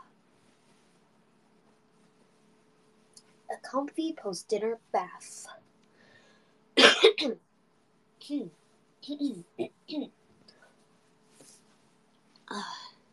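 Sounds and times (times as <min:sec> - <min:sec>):
speech: 0:03.5 - 0:05.6, 0:07.2 - 0:07.5, 0:08.2 - 0:10.2, 0:12.5 - 0:12.8
person coughing: 0:06.8 - 0:07.4.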